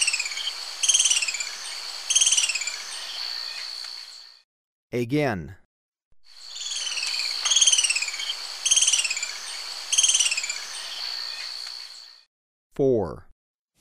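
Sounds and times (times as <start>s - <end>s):
Booted Racket-tail calling with buzzy descending twittered notes in Ecuador: 0.0s - 4.4s, 6.3s - 12.3s
steady high insect-like whine: 0.0s - 4.4s, 6.3s - 12.3s
speech: 4.9s - 5.6s, 12.8s - 13.3s.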